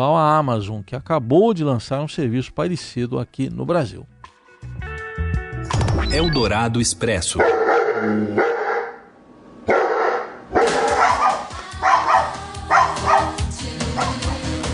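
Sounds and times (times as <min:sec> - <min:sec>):
speech: 0:00.0 - 0:04.2, 0:06.1 - 0:08.5
several dogs barking in a noisy chorus: 0:07.4 - 0:09.1, 0:09.7 - 0:14.6.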